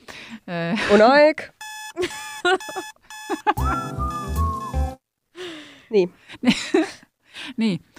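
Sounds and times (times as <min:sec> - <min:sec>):
speech: 0:00.5 - 0:04.2, 0:05.9 - 0:07.9
alarm clock ringing with electronic chirping tones: 0:01.6 - 0:05.0
laughter: 0:02.0 - 0:04.1.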